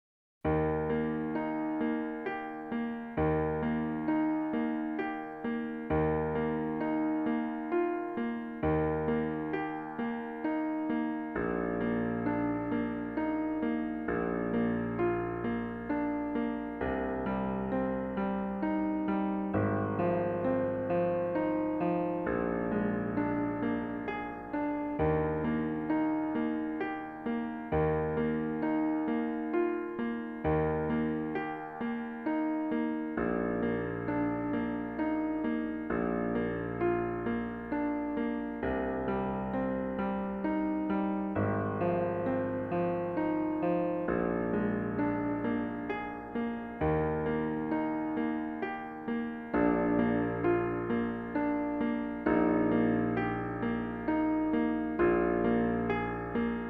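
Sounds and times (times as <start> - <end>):
piano piece: 0.4 - 56.6.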